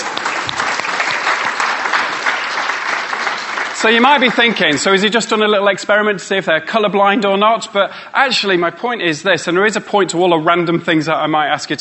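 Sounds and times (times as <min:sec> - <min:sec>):
crowd applauding: 0:00.0 - 0:05.0
speech: 0:03.8 - 0:11.8.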